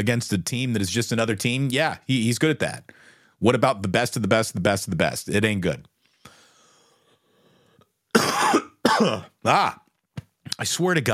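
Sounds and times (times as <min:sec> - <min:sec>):
speech: 0:00.0 - 0:05.9, 0:09.0 - 0:09.8, 0:10.6 - 0:11.1
harsh coughing: 0:08.1 - 0:09.7.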